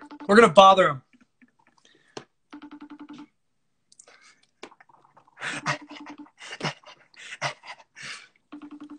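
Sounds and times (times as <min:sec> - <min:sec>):
FaceTime video call ringtone chiming: 0:00.0 - 0:00.8, 0:02.5 - 0:03.4, 0:05.4 - 0:06.8, 0:08.5 - 0:08.9
speech: 0:00.3 - 0:01.0.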